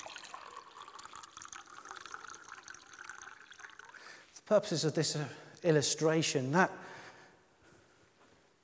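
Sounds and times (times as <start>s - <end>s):
water poured into a glass: 0.0s - 4.4s
speech: 4.5s - 6.9s.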